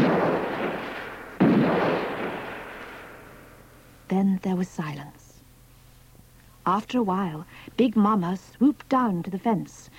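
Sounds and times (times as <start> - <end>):
gunshots over a field: 0.0 - 3.6
speech: 4.1 - 5.2, 6.6 - 9.9.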